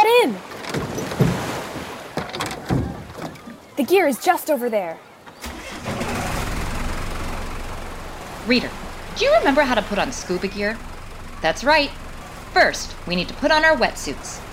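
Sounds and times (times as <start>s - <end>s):
motorboat engine rumbling on the ocean in Hawaii: 0.4s - 3.7s, 5.3s - 14.5s
speech: 3.9s - 5.1s, 8.5s - 14.4s.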